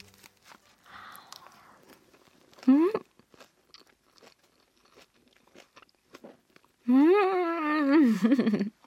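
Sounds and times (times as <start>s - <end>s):
crunchy chewing of fresh takeout salad with sesame oil dressing: 0.0s - 6.9s
speech: 2.7s - 3.0s, 8.2s - 8.7s.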